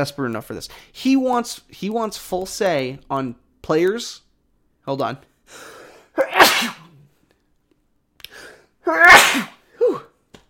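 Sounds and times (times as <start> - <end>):
speech: 0.0 - 4.2, 4.8 - 5.7, 8.9 - 9.5
loud sneezes: 6.0 - 7.1, 8.8 - 10.2
short sniff or gasp: 8.2 - 8.7.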